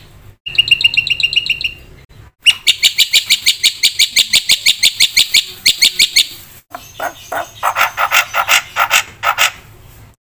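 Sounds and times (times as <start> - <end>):
black-winged myna chattering song: 0.5 - 9.6.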